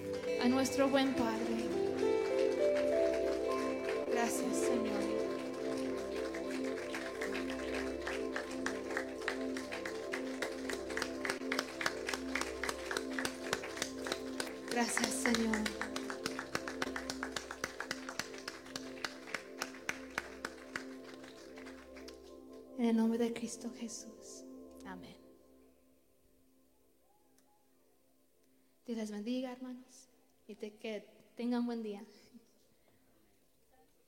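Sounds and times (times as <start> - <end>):
congregation applauding: 0.0 - 22.6
speech: 0.4 - 1.5, 23.6 - 24.3, 24.9 - 25.2, 28.9 - 32.4.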